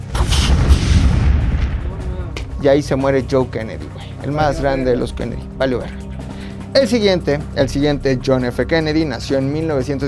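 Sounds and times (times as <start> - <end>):
explosive-laden plane exploding over occupied France: 0.0 - 2.8
speech: 2.6 - 6.1, 6.8 - 10.0.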